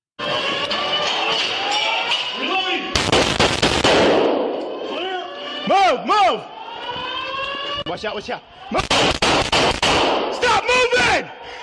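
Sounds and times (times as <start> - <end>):
droning alarm-like tone inside a building: 0.2 - 2.9, 4.3 - 8.8
ringing, wash of noise: 0.2 - 3.0, 4.0 - 8.8
gunshots during a shooting inside a building: 2.9 - 4.6, 8.7 - 10.6
speech: 5.9 - 6.5, 7.9 - 9.1, 10.6 - 11.4.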